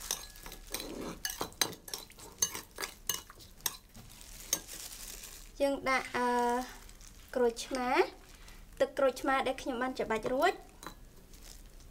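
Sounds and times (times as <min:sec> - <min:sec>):
spoon stirring a sweet-sour mixture: 0:00.0 - 0:05.0, 0:10.0 - 0:11.8
speech: 0:05.6 - 0:08.2, 0:08.8 - 0:10.6.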